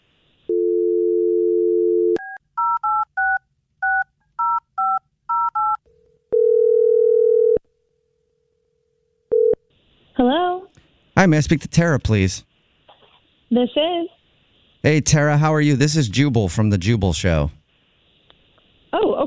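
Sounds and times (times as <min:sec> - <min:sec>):
telephone dial tone: 0:00.5 - 0:07.6, 0:09.3 - 0:09.6
speech: 0:11.2 - 0:12.5, 0:13.5 - 0:14.2, 0:14.8 - 0:17.6.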